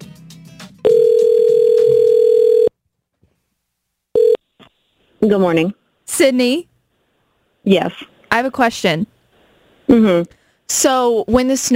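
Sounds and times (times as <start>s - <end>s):
loud steady telephone dial tone: 0.8s - 2.7s, 4.2s - 4.4s
speech: 5.2s - 6.7s, 7.6s - 9.1s, 9.9s - 11.7s.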